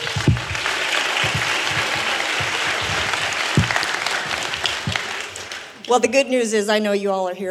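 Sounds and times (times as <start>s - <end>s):
applause from a sizable audience: 0.0s - 5.9s
speech: 5.9s - 7.4s.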